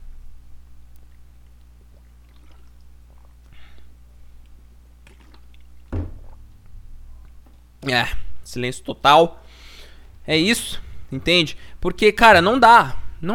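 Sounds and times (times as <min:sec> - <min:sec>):
person sipping water with mouth and swallowing sounds: 0:01.0 - 0:07.4
speech: 0:07.9 - 0:09.4, 0:10.3 - 0:13.3.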